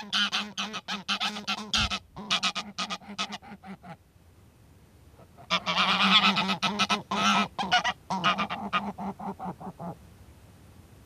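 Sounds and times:
flock of Greylag geese honking: 0.0s - 4.0s, 5.2s - 10.0s.

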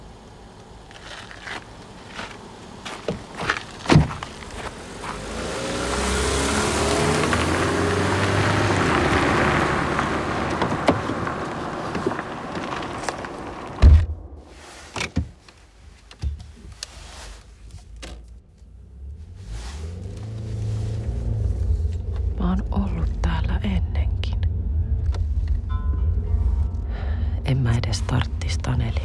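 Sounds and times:
car engine rumbling as it drives past: 0.0s - 29.0s
sharp knocks and clunks: 3.0s - 4.4s, 10.5s - 14.3s.

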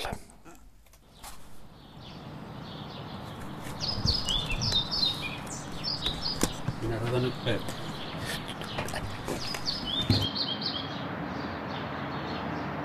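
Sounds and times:
steady low rumble of city noise: 0.0s - 12.8s
European pied flycatcher singing in city: 1.1s - 12.4s
speech: 7.2s - 7.8s.

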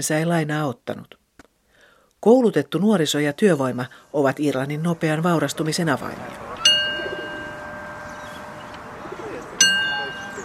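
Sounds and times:
speech: 0.0s - 1.2s, 2.2s - 6.5s
low murmuring background: 6.0s - 10.4s
small toy train bell ding: 6.2s - 10.4s.

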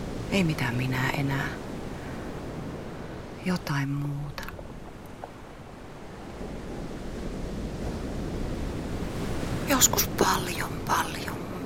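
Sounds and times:
open sea waves with a low rumbling wash: 0.0s - 11.6s
wind noise: 0.0s - 11.6s
speech: 0.3s - 1.6s, 3.4s - 4.4s, 9.7s - 11.3s.

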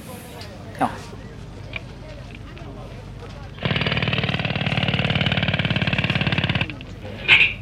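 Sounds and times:
outdoor noise: 0.0s - 7.6s
speech: 0.8s - 1.1s
rock drill boring into stone and earth at Finland's future Olympic village site: 3.6s - 7.6s.

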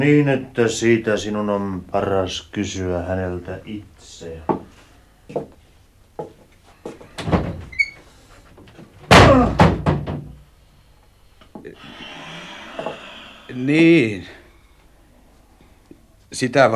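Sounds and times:
speech: 0.0s - 4.6s, 5.3s - 5.6s, 11.6s - 12.2s, 12.8s - 14.4s, 16.3s - 16.7s
lighter knocks and thumps: 8.6s - 10.4s
door slamming shut: 9.1s - 10.3s.

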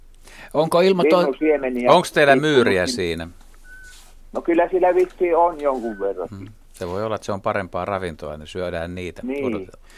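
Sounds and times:
speech: 0.5s - 3.4s, 4.3s - 9.9s
Eurasian pygmy owl whistling call: 3.6s - 4.0s, 5.8s - 6.2s.

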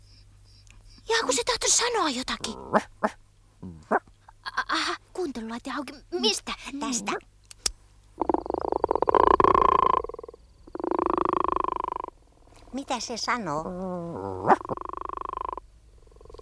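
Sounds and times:
speech: 1.2s - 4.0s, 4.8s - 7.3s, 12.7s - 15.0s
frog croaking: 8.2s - 16.4s.

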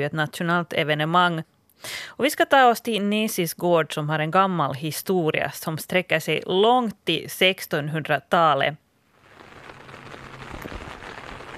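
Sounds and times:
speech: 0.0s - 8.8s
heavy rain pouring on a farm garden: 9.2s - 11.5s.

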